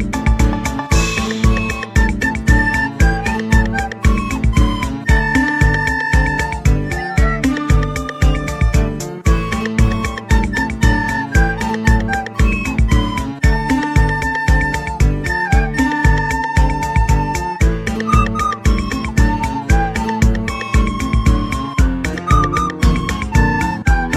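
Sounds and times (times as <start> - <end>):
soul flute music: 0.1 - 24.1.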